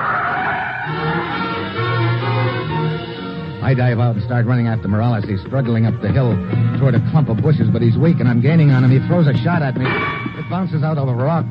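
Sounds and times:
car skidding to a stop: 0.0 - 2.0
speech: 3.7 - 11.5.

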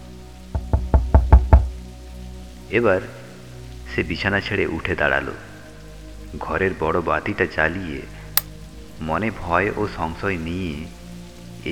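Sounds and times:
knocking on a door on a rainy night: 0.6 - 1.7
speech: 2.7 - 3.2, 4.0 - 5.5, 6.3 - 8.2, 9.0 - 11.0.

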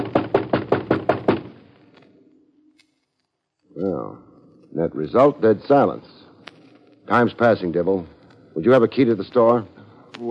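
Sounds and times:
loud solid bangs on a door: 0.0 - 1.6
speech: 4.8 - 6.2, 7.1 - 10.2.

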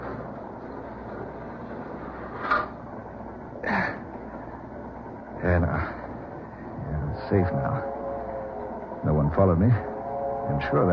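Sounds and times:
heavy boxcar sliding door shutting: 0.0 - 3.1
short scraping clunking bursts: 0.0 - 10.9
steady rumbling train: 0.0 - 10.9
speech: 7.3 - 8.0, 9.4 - 9.9, 10.5 - 10.9.

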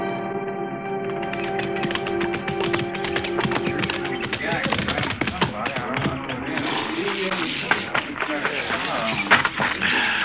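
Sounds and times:
horse hooves clip-clopping: 1.1 - 10.2
murmur of voices: 2.2 - 10.2.

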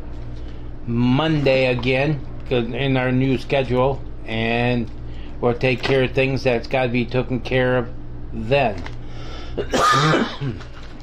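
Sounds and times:
faint low hum: 0.0 - 11.0
speech: 0.9 - 9.0, 9.6 - 10.7
harsh cough caused by an allergy and heart medicine side effect: 9.6 - 10.7.

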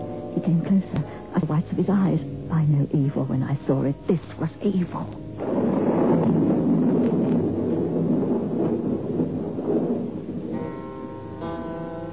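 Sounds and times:
speech: 0.4 - 5.6
gusting storm wind: 5.2 - 11.6
deep rolling thunder: 5.2 - 12.1.

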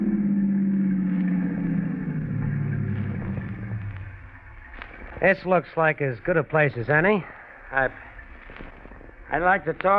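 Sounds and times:
car engine slowing and pulling to a stop: 0.0 - 6.6
speech: 5.2 - 8.1, 9.3 - 9.9.

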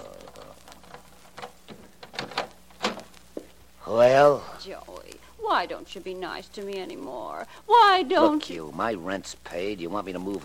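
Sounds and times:
low steady hum: 0.0 - 10.4
door unlatching and opening: 0.9 - 3.1
speech: 3.9 - 4.9, 5.5 - 10.4.

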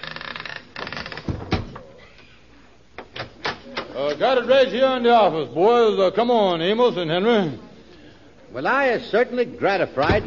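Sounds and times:
short creak of a closet door: 0.0 - 1.9
closet door opening and closing: 0.0 - 2.0, 3.0 - 4.2
speech: 4.0 - 7.7, 8.5 - 10.2.

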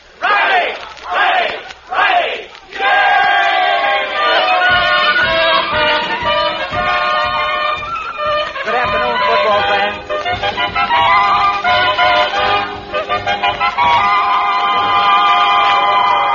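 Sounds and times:
large football stadium crowd cheering at an exhibition football game: 0.0 - 16.3.

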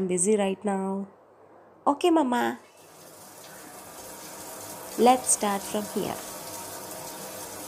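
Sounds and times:
speech: 0.0 - 1.2, 1.8 - 2.7, 5.0 - 6.3
water pouring onto potted plants: 2.8 - 7.6.

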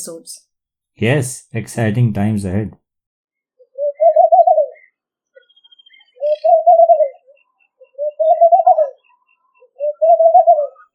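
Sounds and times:
speech: 0.0 - 2.8
laughing dove cooing: 3.7 - 4.9, 6.2 - 9.0, 9.7 - 10.9.

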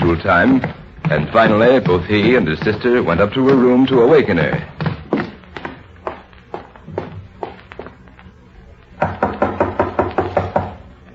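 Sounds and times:
speech: 0.1 - 4.8
knocking on a wooden bedroom door: 9.0 - 10.8.

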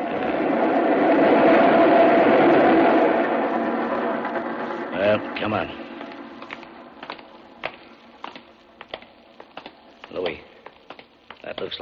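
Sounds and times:
express train passing through station: 0.0 - 6.4
speech: 5.4 - 5.8.

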